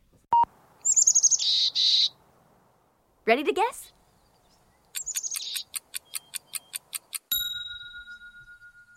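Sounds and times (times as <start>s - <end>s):
chickadee singing: 0.8s - 2.2s, 4.1s - 7.3s
speech: 3.3s - 4.0s.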